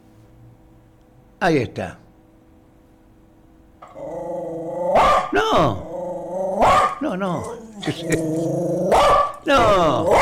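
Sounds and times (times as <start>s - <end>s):
speech: 1.4s - 2.0s, 5.4s - 5.8s, 7.0s - 10.2s
dog growling: 3.8s - 10.2s
dog barking: 4.9s - 5.7s, 6.6s - 8.2s, 8.8s - 10.2s.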